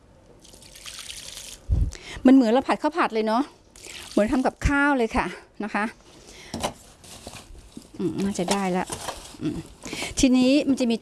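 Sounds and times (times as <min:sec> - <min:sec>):
water poured onto compost mix of soil dead leaves and food scraps: 0:00.4 - 0:01.7, 0:03.8 - 0:04.8
speech: 0:02.2 - 0:03.6, 0:04.2 - 0:06.0, 0:08.0 - 0:10.9.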